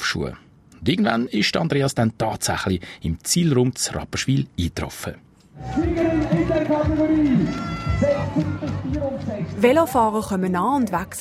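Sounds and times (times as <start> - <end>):
speech: 0.1 - 6.0, 9.6 - 11.1
outdoor crowd at a triathlon finish area in Rapperswil: 5.6 - 11.1.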